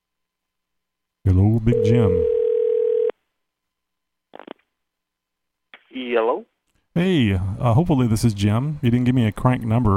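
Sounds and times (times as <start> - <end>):
speech: 1.3 - 2.4, 6.1 - 9.9
telephone line tone as a call is dialed: 1.7 - 3.1.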